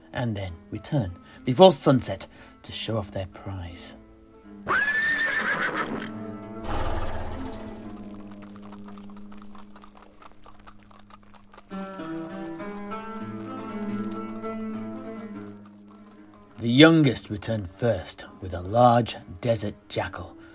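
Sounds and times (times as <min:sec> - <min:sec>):
sustained music: 0:00.0 - 0:20.5
speech: 0:00.1 - 0:04.0, 0:16.8 - 0:20.4
horse whinnying: 0:04.6 - 0:08.1
hooves galloping off: 0:07.0 - 0:17.6.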